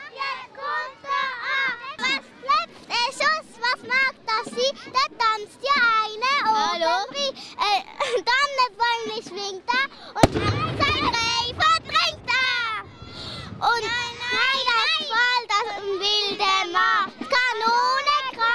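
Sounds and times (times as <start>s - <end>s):
excited children chattering and calling out: 0.0s - 18.5s
black-powder salute shot bang: 10.2s - 13.7s.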